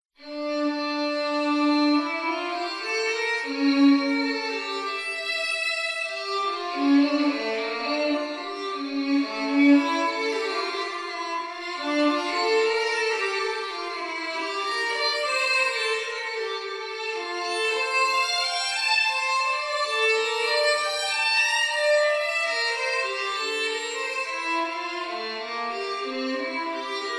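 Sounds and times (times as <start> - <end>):
violin piece: 0.2 - 27.1.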